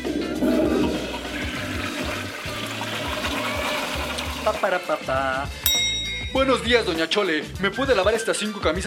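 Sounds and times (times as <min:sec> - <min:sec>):
toilet flushing: 0:00.0 - 0:05.5
speech: 0:04.5 - 0:05.6, 0:06.3 - 0:08.8.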